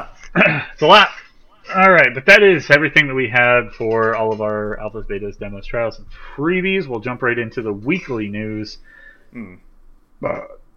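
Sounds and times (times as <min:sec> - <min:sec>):
speech: 0:00.4 - 0:10.6
person burping: 0:09.4 - 0:09.6, 0:10.2 - 0:10.6.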